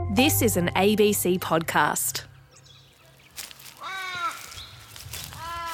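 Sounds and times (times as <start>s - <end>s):
speech: 0.2s - 2.3s
birds calling in the bush at a bushland cemetery: 2.6s - 5.7s.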